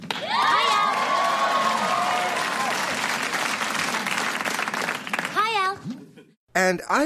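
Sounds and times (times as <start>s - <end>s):
studio audience cheering and applauding: 0.0s - 5.6s
whoops and shouts: 0.2s - 2.8s
speech: 6.6s - 7.0s.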